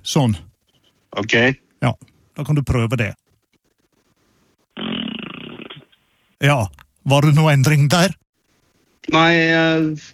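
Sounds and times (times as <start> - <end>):
speech: 0.0 - 0.5, 1.2 - 3.2, 6.4 - 8.2, 9.0 - 10.1
person blowing a raspberry into a crack by a lowered window: 4.8 - 5.9.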